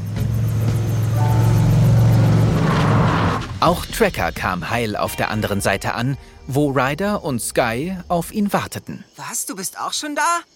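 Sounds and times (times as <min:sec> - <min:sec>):
quad bike engine droning while driving slowly across a gorge: 0:00.0 - 0:03.6
speech: 0:03.6 - 0:10.5.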